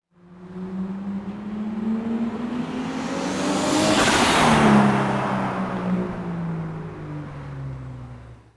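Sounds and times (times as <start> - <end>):
Nissan Skyline GTR car passing by: 0.2 - 8.5.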